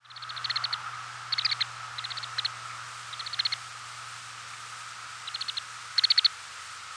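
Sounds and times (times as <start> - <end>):
Lapland longspur rattles of rapid ticking notes: 0.0 - 3.8, 5.2 - 6.3
steady low hum: 0.0 - 6.9.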